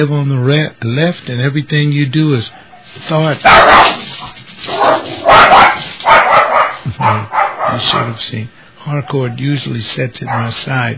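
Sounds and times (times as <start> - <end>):
speech: 0.0 - 4.0, 7.0 - 10.9
dog barking: 2.5 - 8.2, 10.2 - 10.7.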